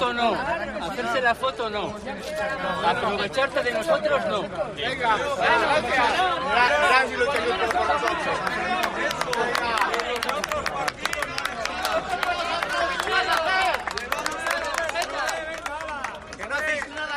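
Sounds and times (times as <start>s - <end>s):
speech: 0.0s - 11.2s
large crowd of protesting farmers and ranchers applauding: 6.6s - 17.1s.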